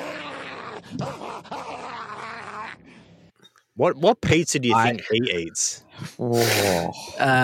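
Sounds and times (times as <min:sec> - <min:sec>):
dog whining and groaning: 0:00.0 - 0:02.9
speech: 0:00.9 - 0:01.7, 0:03.8 - 0:07.4.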